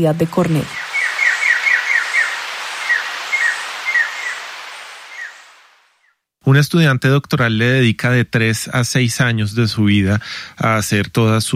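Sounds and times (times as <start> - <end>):
speech: 0.0 - 0.8, 6.4 - 11.5
soft hiss: 0.0 - 11.5
scarlet jay calls: 0.1 - 6.2
scarlet jay song with whistled chirps: 0.6 - 4.4, 5.1 - 5.5.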